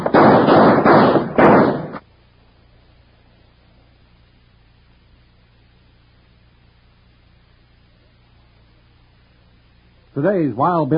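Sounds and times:
gunshots from several guns in an old-West shootout at night: 0.0 - 2.0
speech: 10.2 - 10.9.

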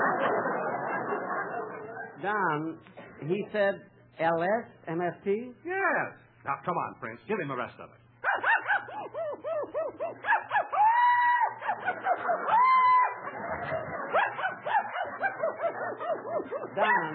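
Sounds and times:
laughter: 0.0 - 2.2, 9.0 - 17.1
speech: 2.2 - 8.0, 16.4 - 17.1
dog barking: 8.2 - 10.8, 11.5 - 17.1.

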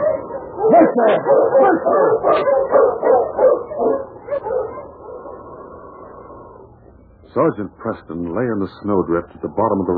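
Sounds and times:
pack of sled dogs barking and yipping: 0.0 - 4.9
speech: 0.7 - 3.2, 7.3 - 9.9.

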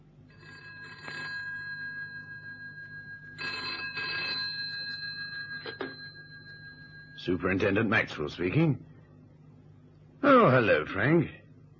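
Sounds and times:
steady low hum: 0.0 - 11.7
telephone ringing with bright electronic trill: 0.3 - 8.3
speech: 7.2 - 8.9, 10.5 - 11.4.

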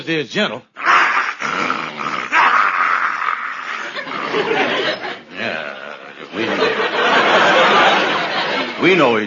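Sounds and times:
speech: 0.0 - 0.8, 4.3 - 7.7, 8.8 - 9.2
German shepherd dog growling and snarling: 0.8 - 6.4
laughter: 3.7 - 8.9.

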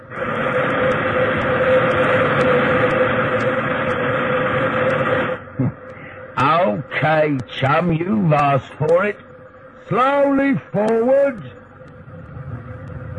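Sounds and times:
steam locomotive releasing a loud blast of steam: 0.0 - 5.4
quiet rumbling: 0.0 - 13.1
speech: 7.2 - 9.2, 9.9 - 11.6.

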